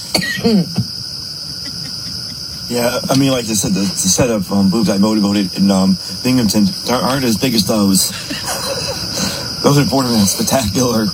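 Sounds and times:
person coughing with a throaty voiced rasp: 0.0s - 0.9s
speech: 0.4s - 0.9s, 2.7s - 8.7s, 9.6s - 11.1s
laughter: 0.4s - 4.6s, 6.9s - 11.1s.

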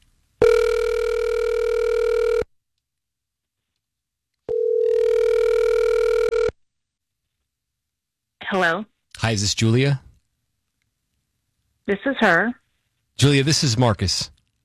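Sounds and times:
electronic ringback tone from an outgoing phone call: 0.4s - 2.5s, 4.5s - 6.5s
speech: 8.5s - 10.0s, 11.9s - 12.6s, 13.2s - 14.4s.

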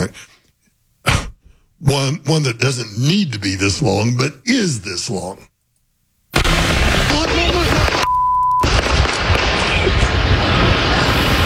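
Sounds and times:
speech: 0.0s - 0.3s, 1.8s - 5.5s
rapid barrage of gunshots fired in a neighborhood: 6.4s - 11.0s
short steady beep: 8.0s - 8.7s.

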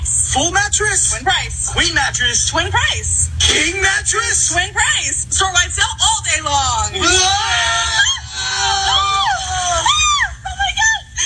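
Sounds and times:
low rumble: 0.0s - 11.2s
speech: 0.4s - 8.0s
several people screaming in a commercial: 7.0s - 10.4s.

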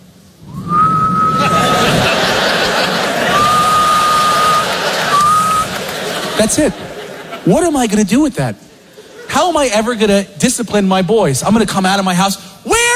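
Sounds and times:
loud crowd laughter: 1.2s - 7.6s
speech: 6.4s - 8.7s, 9.4s - 12.8s.

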